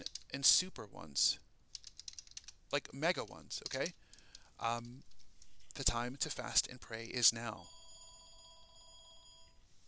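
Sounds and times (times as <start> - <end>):
speech: 0.3 - 1.4, 2.7 - 4.0, 4.6 - 5.1, 5.8 - 7.8
telephone ringing with a high electronic trill: 7.4 - 9.7.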